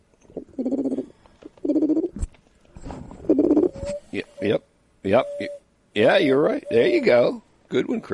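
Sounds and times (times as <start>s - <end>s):
person imitating a mourning dove coo: 0.4s - 2.1s
speech: 4.1s - 8.1s.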